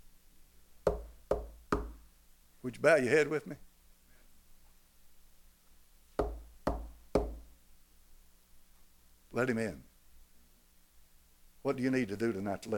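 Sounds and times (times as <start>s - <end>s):
firm knocking on a door: 0.9s - 2.0s, 6.2s - 7.5s
speech: 2.6s - 3.7s, 9.4s - 9.9s, 11.6s - 12.7s.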